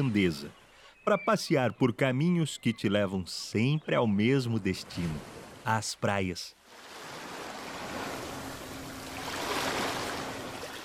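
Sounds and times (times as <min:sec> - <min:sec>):
speech: 0:00.0 - 0:06.9
ocean waves breaking on shore: 0:04.5 - 0:05.8, 0:06.6 - 0:10.8.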